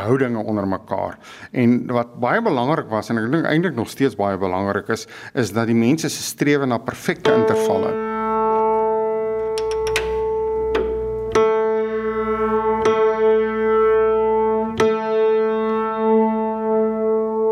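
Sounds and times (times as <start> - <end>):
speech: 0.0 - 8.1
single piano note A being tuned to pitch: 7.2 - 17.5.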